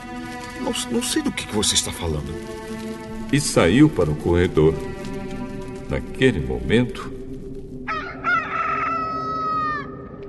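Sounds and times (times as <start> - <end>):
speech: 0.6 - 5.1, 5.9 - 7.2
rooster crowing: 7.9 - 10.0.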